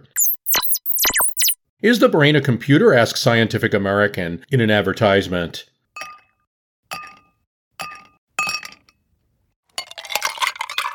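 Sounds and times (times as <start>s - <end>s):
speech: 1.8s - 5.7s
huge ice cubes clinking against glasses of hard liquor: 9.8s - 10.9s.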